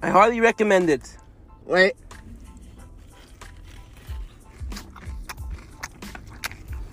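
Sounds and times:
speech: 0.1s - 2.0s
crisp piping-hot finger food being bitten and chewed: 2.1s - 6.9s.

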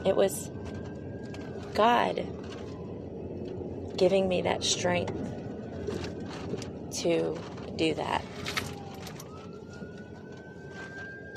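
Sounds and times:
speech: 0.0s - 0.7s, 1.8s - 2.4s, 4.0s - 8.6s
ambulance siren: 0.0s - 11.3s
traffic noise: 0.0s - 11.3s.

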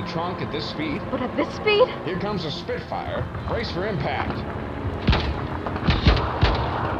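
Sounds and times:
speech: 0.1s - 5.3s
heavy booming gunshots in a radio drama battle scene: 5.0s - 6.9s.

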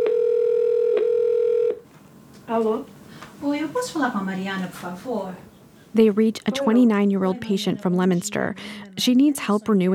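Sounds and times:
loud steady electronic telephone ringing tone: 0.0s - 1.8s
speech: 2.5s - 9.9s.

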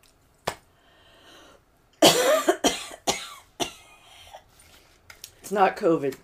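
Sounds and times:
person coughing after choking on a drink: 2.0s - 4.1s
speech: 5.5s - 6.2s.

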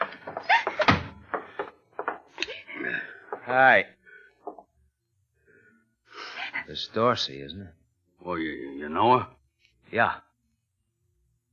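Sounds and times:
door pushed shut with a solid thud: 0.0s - 2.2s
speech: 3.5s - 4.0s, 6.8s - 10.3s.

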